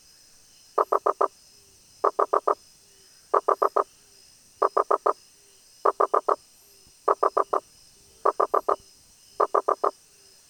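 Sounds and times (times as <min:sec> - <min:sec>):
soft steady hiss: 0:00.0 - 0:10.4
Rosenberg's gladiator frog Boana rosenbergi hollow knocking call: 0:00.8 - 0:01.3, 0:02.0 - 0:02.6, 0:03.3 - 0:03.9, 0:04.6 - 0:05.2, 0:05.8 - 0:06.4, 0:07.1 - 0:07.6, 0:08.2 - 0:08.8, 0:09.4 - 0:09.9.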